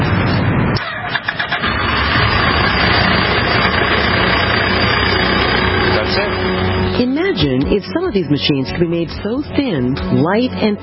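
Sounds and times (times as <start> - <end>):
motorbike engine starting and running: 0.8 - 7.8
speech: 7.8 - 10.8.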